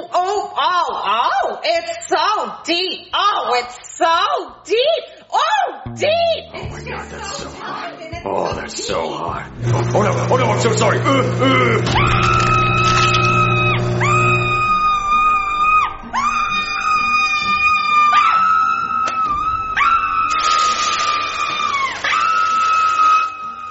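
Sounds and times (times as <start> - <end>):
speech: 0.6 - 13.0
woman screaming in high-pitched wails: 12.0 - 23.6.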